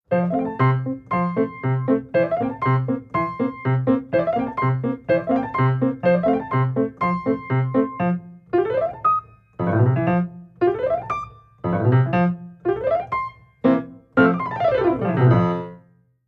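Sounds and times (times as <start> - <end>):
piano glissando: 0.1 - 15.9.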